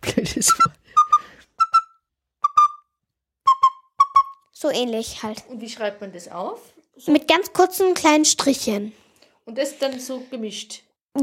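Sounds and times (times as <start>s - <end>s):
laughter: 0.0s - 0.8s
person whistling short bright peeps imitating a small bird: 0.9s - 2.8s, 3.5s - 4.4s
speech: 4.6s - 11.2s.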